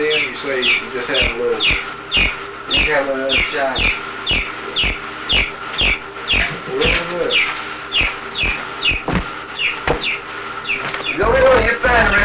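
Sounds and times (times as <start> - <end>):
chicken clucking: 0.0 - 11.7
speech: 0.2 - 5.5
soft low thumps: 1.2 - 7.0, 8.0 - 10.0.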